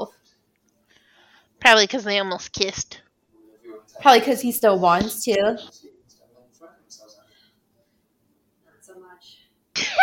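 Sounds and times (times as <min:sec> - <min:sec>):
speech: 0:01.7 - 0:03.0, 0:04.0 - 0:05.9
faint murmuring: 0:05.5 - 0:09.5.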